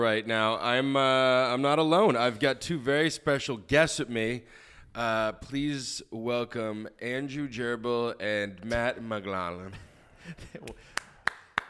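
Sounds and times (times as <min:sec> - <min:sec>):
speech: 0:00.0 - 0:11.0
thin smattering of applause: 0:10.9 - 0:11.6.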